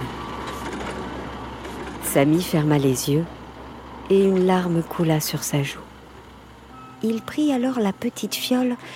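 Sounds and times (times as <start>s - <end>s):
garbage truck engine idling: 0.0s - 8.9s
speech: 2.1s - 3.4s, 4.1s - 5.9s, 7.0s - 8.9s
faint beeping: 6.6s - 8.9s.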